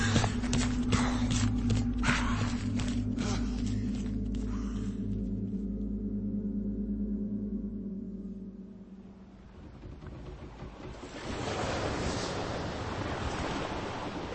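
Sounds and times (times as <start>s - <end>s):
footsteps running through snow towards a boat: 0.0s - 4.5s
low constant droning rumble: 0.0s - 11.2s
wind: 0.0s - 14.3s.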